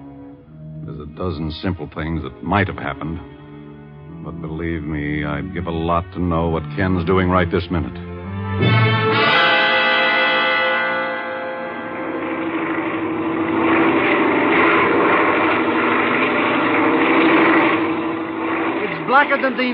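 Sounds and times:
airplane engine droning in flight: 0.0 - 19.7
speech: 0.9 - 3.4, 4.2 - 9.0, 19.2 - 19.7.

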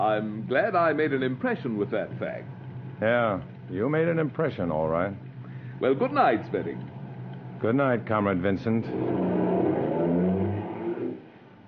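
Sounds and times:
speech: 0.0 - 7.0, 7.6 - 10.2
car engine rumbling and revving while driving away: 8.6 - 11.3.

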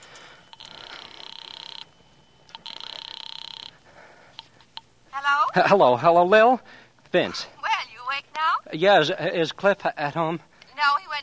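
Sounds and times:
telephone call from a phone booth ringing on the line: 0.0 - 6.0
speech: 5.3 - 7.6, 8.7 - 11.0.

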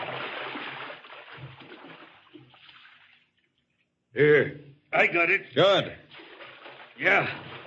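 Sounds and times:
booted feet wading through shallow water: 0.0 - 3.2, 6.1 - 7.6
speech: 4.2 - 6.0, 7.0 - 7.5.

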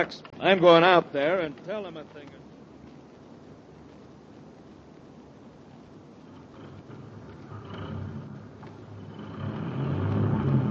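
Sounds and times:
speech: 0.0 - 2.4
heavy truck engine rumbling: 6.2 - 10.6.

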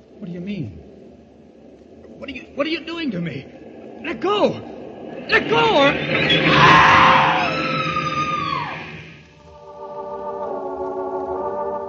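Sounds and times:
speech: 0.2 - 0.9, 2.2 - 4.7, 5.3 - 6.8
train grinding to a stop: 1.9 - 9.4
woman screaming on a train platform: 6.5 - 9.0.

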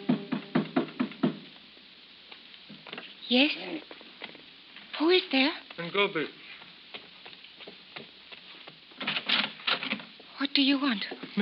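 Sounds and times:
knocking on a door: 0.0 - 1.5
speech: 3.3 - 4.0, 5.0 - 6.4, 10.6 - 11.4.

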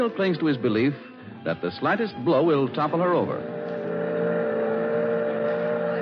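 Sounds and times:
speech: 0.0 - 3.6
excursion boat engine droning: 3.2 - 6.0.

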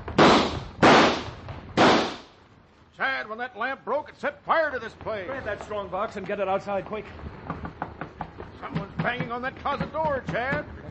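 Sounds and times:
gunshots in a dramatized Old West shootout: 0.1 - 2.4
speech: 3.0 - 7.3, 9.0 - 10.8.

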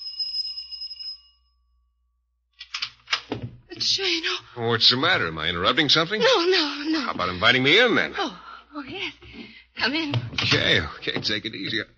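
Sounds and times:
doorbell chime: 0.0 - 2.0
speech: 3.8 - 11.9.

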